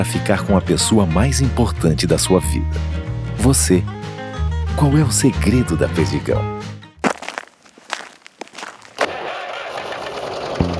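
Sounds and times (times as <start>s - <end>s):
speech: 0.0s - 4.0s, 4.8s - 6.7s
footsteps: 7.0s - 9.2s
tractor engine starting: 9.0s - 10.7s.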